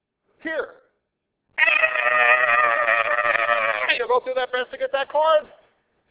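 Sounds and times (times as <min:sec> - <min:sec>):
speech: 0:00.4 - 0:00.8, 0:04.1 - 0:05.6
human voice imitating a hog squealing: 0:01.6 - 0:04.1.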